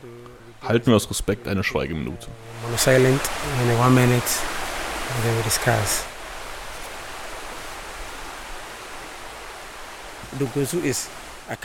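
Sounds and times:
speech: 0.0s - 6.1s, 10.3s - 11.6s
flowing river water rushing: 2.1s - 11.6s.

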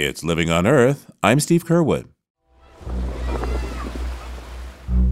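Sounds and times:
speech: 0.0s - 2.1s
Pacific Ocean surf: 2.6s - 5.0s.

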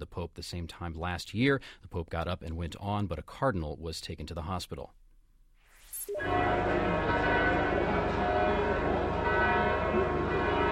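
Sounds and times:
speech: 0.0s - 5.0s
church bells ringing in Bethlehem for morning mass: 6.1s - 10.7s.

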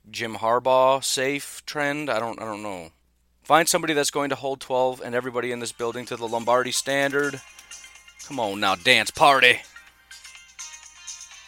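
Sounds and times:
speech: 0.1s - 9.7s
mobile phone ringtone: 5.6s - 11.4s.

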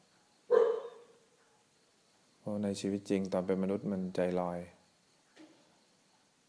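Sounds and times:
dog barking: 0.5s - 1.2s
speech: 2.5s - 4.8s.

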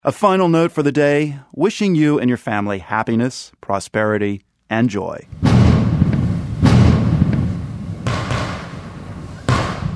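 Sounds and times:
speech: 0.0s - 5.4s
steady rumble: 5.2s - 9.9s
Diwali fireworks exploding outdoors: 5.3s - 9.9s.

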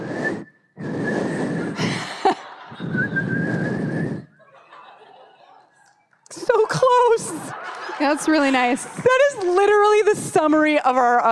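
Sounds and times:
crowd whistling: 0.0s - 1.8s, 2.4s - 5.3s
laughter: 1.8s - 3.4s, 4.4s - 10.0s
crowd cheering: 4.6s - 9.6s
speech: 8.0s - 11.2s.

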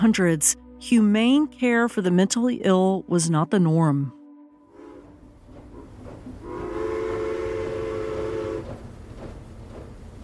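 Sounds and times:
speech: 0.0s - 4.2s
steam train whistle blast: 4.7s - 8.8s
low rumble of the moving steam train: 4.7s - 10.2s.

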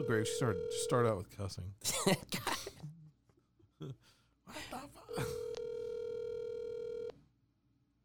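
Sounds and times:
steady telephone tone of an outgoing call: 0.0s - 0.9s, 5.1s - 7.1s
speech: 0.0s - 2.8s.

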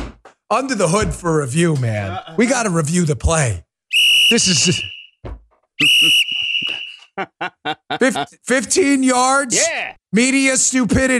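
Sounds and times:
speech: 0.5s - 3.7s, 4.3s - 6.2s, 7.2s - 11.1s
laughter: 2.0s - 2.5s, 5.8s - 8.4s
referee-style whistle blast: 3.9s - 5.2s, 5.8s - 7.2s.

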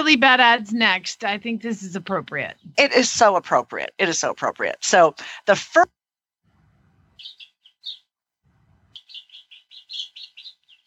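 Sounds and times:
speech: 0.0s - 6.0s
escaped baby chick chirping: 7.2s - 8.0s, 8.9s - 10.8s
low rumbling noises: 8.5s - 9.0s.

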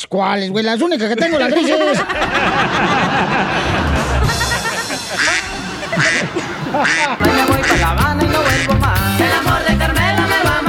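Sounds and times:
speech: 0.1s - 4.4s, 5.1s - 9.7s
laughter: 1.0s - 8.7s
duck quacking: 5.1s - 9.0s.

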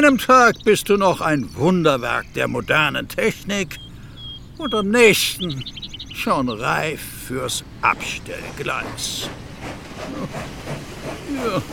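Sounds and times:
speech: 0.0s - 3.8s, 4.6s - 11.7s
steam locomotive chugging with puffs of steam: 6.5s - 11.7s
steam locomotive breathy hiss: 8.4s - 11.7s.

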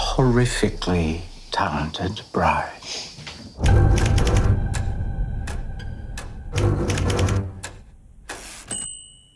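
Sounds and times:
speech: 0.2s - 4.0s
rapid mechanical typewriter clacking: 3.8s - 4.9s, 6.6s - 7.8s
typewriter bell ding as the carriage reaches its end: 8.7s - 9.3s.

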